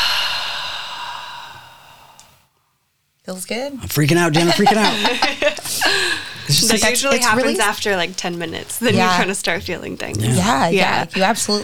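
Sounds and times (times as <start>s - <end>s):
deep exhale during a breathing exercise: 0.0s - 2.5s, 5.7s - 6.5s
speech: 3.3s - 11.6s
laughter: 3.8s - 8.0s, 8.8s - 9.4s, 10.2s - 11.6s.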